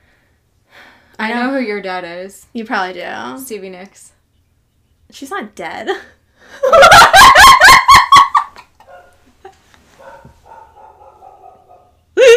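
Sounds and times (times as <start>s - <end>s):
speech: 1.3s - 4.2s, 5.1s - 7.6s
laughter: 6.6s - 8.9s
dog barking: 8.8s - 9.2s, 10.0s - 12.0s.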